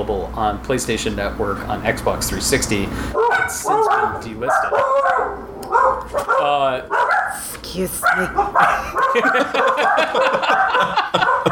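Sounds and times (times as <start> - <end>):
speech: 0.0 - 5.5, 6.1 - 11.4
dog barking: 3.1 - 11.4
people laughing: 8.6 - 11.4.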